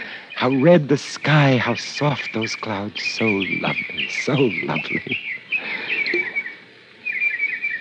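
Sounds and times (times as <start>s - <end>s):
small birds chirping in a fish pond: 0.0s - 7.8s
speech: 0.4s - 5.2s
birds splashing in a fish pond: 5.6s - 6.7s.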